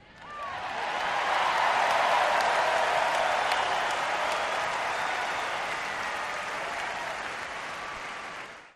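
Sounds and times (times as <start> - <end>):
crowd: 0.0 - 8.7
whistles: 3.4 - 6.4.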